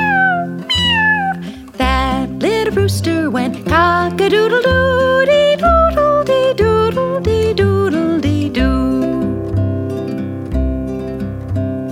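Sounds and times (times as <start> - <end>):
singing voice imitating a cat meowing in a children's song: 0.0 - 1.5
steady musical backing of a children's song: 0.0 - 11.9
speech: 2.8 - 4.6.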